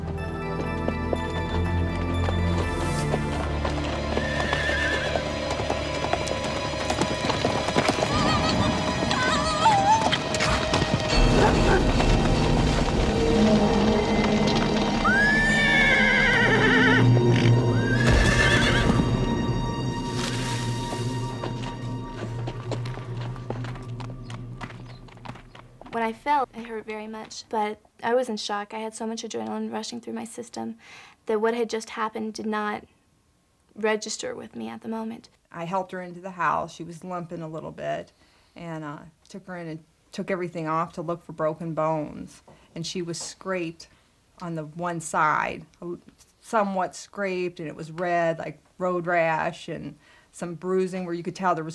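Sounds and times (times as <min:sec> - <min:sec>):
saddled ex-race horse hooves clip-clopping in Phoenix Arizona: 0:00.0 - 0:27.4
ex-race horse whinnying and neighing: 0:04.0 - 0:05.5, 0:07.8 - 0:10.9, 0:14.0 - 0:19.1
speech: 0:26.3 - 0:32.9, 0:33.8 - 0:51.7.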